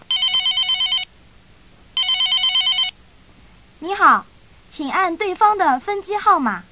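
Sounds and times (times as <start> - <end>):
telephone ringing during a call: 0.1 - 1.1, 2.0 - 3.0
speech: 3.9 - 6.7.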